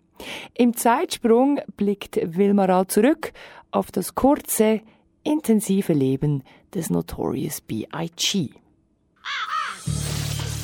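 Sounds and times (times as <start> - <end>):
speech: 0.6 - 8.6, 9.2 - 10.0
raven cawing: 9.2 - 10.0.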